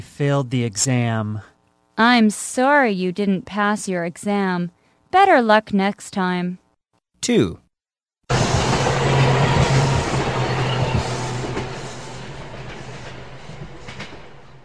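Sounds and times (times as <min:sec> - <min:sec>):
speech: 0:00.2 - 0:06.6, 0:07.2 - 0:07.6
train rumbling along the rails: 0:08.3 - 0:14.6.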